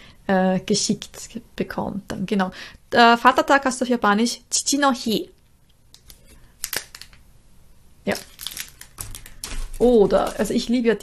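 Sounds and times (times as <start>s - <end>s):
speech: 0.3s - 5.4s, 8.0s - 8.3s, 9.8s - 11.0s
small Japanese washi paper envelope crinkling while handled: 6.0s - 7.2s, 8.1s - 10.8s.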